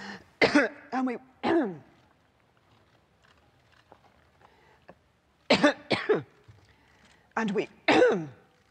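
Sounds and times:
person coughing during a speech: 0.4 - 0.8, 5.5 - 6.3, 7.9 - 8.4
speech: 0.5 - 1.9, 5.6 - 6.3, 7.4 - 8.4.

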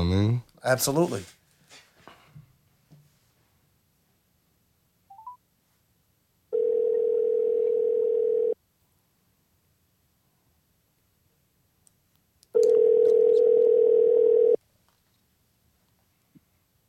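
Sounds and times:
speech: 0.0 - 1.4
outgoing phone call ringing tone: 6.5 - 8.6, 12.6 - 14.6.

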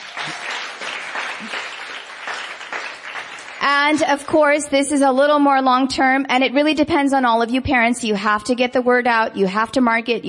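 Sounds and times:
crowd at a school academy gathering applauding: 0.0 - 4.4
speech: 3.6 - 10.2.

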